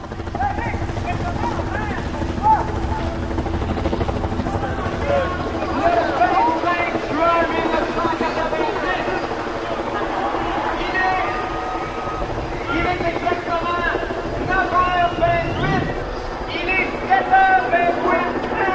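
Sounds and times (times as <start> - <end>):
faint indistinct voices: 0.0 - 18.7
helicopter rotor blades chopping: 0.0 - 18.7
heavy low helicopter engine drone: 15.1 - 16.5.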